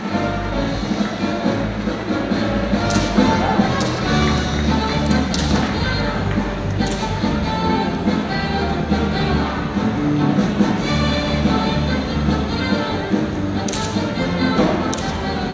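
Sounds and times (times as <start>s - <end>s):
circus music for a horse act: 0.0s - 15.5s.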